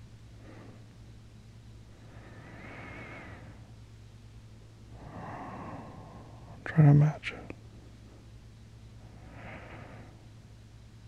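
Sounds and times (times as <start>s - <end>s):
low steady hum: 0.0s - 11.0s
slow deep breathing: 0.3s - 1.0s, 1.8s - 3.8s, 4.8s - 6.7s, 9.0s - 10.4s
speech: 6.7s - 7.4s.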